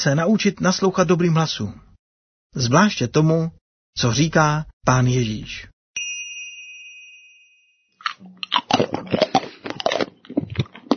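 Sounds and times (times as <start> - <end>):
speech: 0.0 - 1.9, 2.5 - 5.7, 8.8 - 9.3
bell-like ding: 6.0 - 8.0
loud crunching and chewing into microphone: 8.0 - 10.9.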